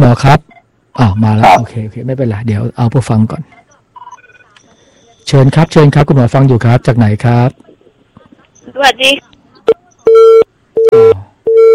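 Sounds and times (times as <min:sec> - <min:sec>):
speech: 0:00.0 - 0:03.6, 0:05.3 - 0:07.6, 0:08.7 - 0:11.3
telephone busy tone beeps after a dropped call: 0:03.5 - 0:05.3, 0:10.0 - 0:11.7.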